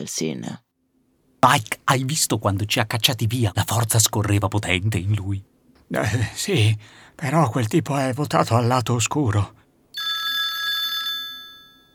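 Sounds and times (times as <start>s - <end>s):
speech: 0.0s - 0.6s, 1.4s - 9.6s
telephone bell ringing in a rapid rattling burst: 9.9s - 11.9s.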